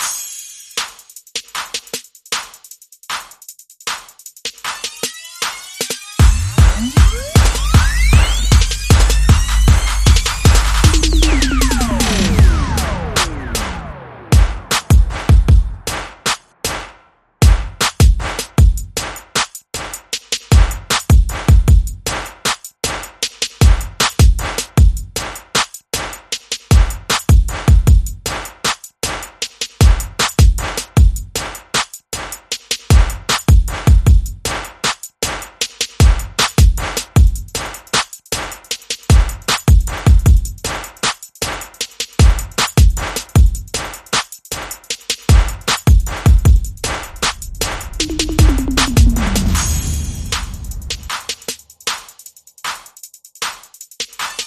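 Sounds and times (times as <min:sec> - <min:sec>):
drums: 0:00.0 - 0:54.4
bass: 0:06.2 - 0:16.0, 0:45.3 - 0:51.1.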